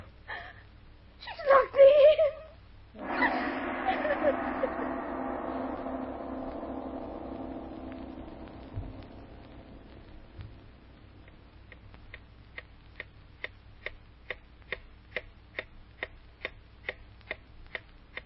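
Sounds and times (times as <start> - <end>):
low rumble: 0.1 - 14.2
clock ticking: 11.2 - 18.2.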